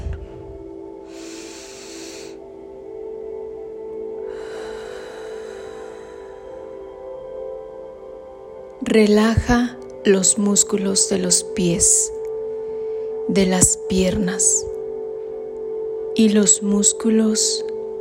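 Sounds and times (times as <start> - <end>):
deep breath in and out in a guided relaxation exercise: 0.0 - 2.9, 4.1 - 7.9, 12.4 - 13.3
steady low hum: 0.0 - 18.0
speech: 8.9 - 12.2, 13.3 - 14.8, 16.2 - 17.8.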